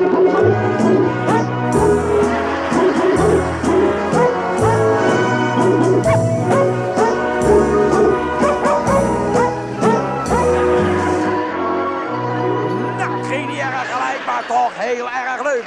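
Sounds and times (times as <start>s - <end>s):
chorus of dogs barking a birthday melody: 0.0s - 11.2s
orchestral backing music: 0.0s - 14.5s
laughter: 13.0s - 15.6s.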